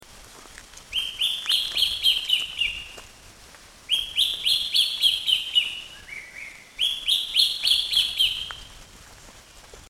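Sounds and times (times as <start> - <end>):
Philippine hawk-cuckoo calling at Makiling: 0.9 - 3.1, 3.9 - 8.7.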